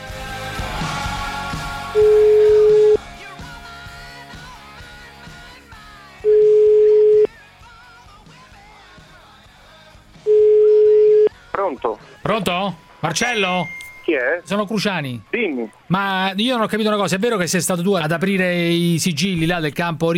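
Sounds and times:
telephone ringback tone while placing a call: 2.0 - 3.0, 6.3 - 7.3, 10.3 - 11.3
speech: 11.9 - 20.1.

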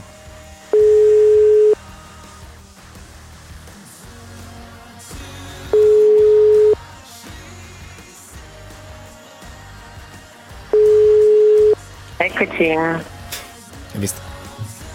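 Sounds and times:
low murky music: 0.0 - 14.9
telephone ringback tone: 0.7 - 1.8, 5.7 - 6.8, 10.8 - 11.8
speech: 12.2 - 13.1, 14.0 - 14.2.

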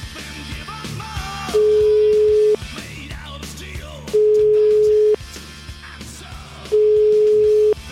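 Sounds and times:
radio music: 0.4 - 5.4, 6.0 - 7.9
single-pitched telephone ringback tone: 1.6 - 2.6, 4.2 - 5.2, 6.7 - 7.8.

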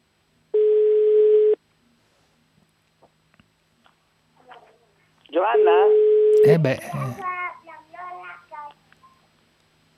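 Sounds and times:
telephone ringing tone on an outgoing call: 0.6 - 1.6, 5.6 - 6.5
speech: 6.5 - 7.3.

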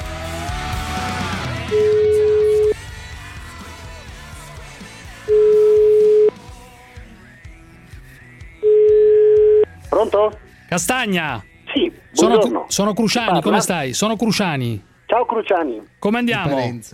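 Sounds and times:
outgoing telephone call ringback tone: 1.7 - 2.8, 5.3 - 6.3, 8.6 - 9.7
speech: 10.0 - 11.5, 12.2 - 16.9.

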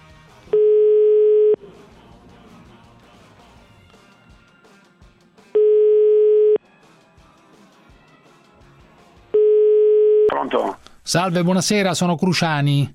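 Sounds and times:
outgoing telephone call ringing tone: 0.6 - 1.6, 5.6 - 6.6, 9.4 - 10.3
speech: 11.1 - 12.9.

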